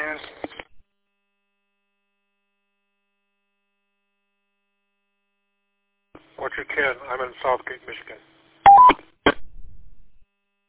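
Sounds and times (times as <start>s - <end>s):
speech: 6.2s - 8.3s
CB radio roger beep: 8.7s - 9.4s.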